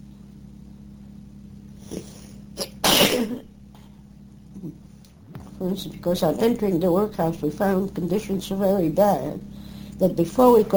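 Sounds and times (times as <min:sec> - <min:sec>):
steady low hum: 0:00.0 - 0:10.7
breathy intake before a sneeze: 0:01.8 - 0:02.8
person sneezing: 0:01.8 - 0:03.5
speech: 0:03.2 - 0:03.5, 0:05.6 - 0:10.7.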